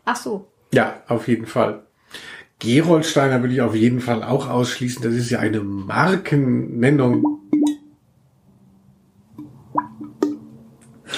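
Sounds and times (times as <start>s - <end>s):
speech: 0.1s - 7.6s
voice imitating a fish with wet mouth plops: 9.4s - 10.5s.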